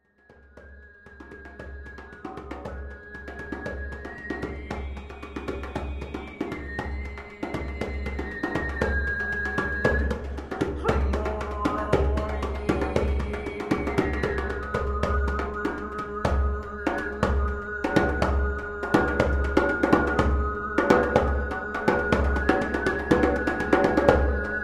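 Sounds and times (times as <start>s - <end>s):
djembe drum improvisation: 1.1s - 24.6s
overtone singing improvisation: 10.6s - 24.4s.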